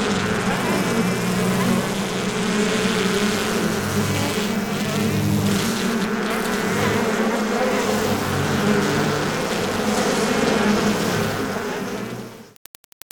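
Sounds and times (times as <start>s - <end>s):
honey bees buzzing in an active hive: 0.0s - 12.5s.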